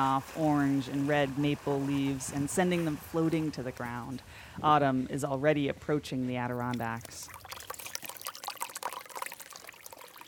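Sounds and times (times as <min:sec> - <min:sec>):
speech: 0:00.0 - 0:07.5
small babbling brook flowing over stones: 0:06.5 - 0:10.2.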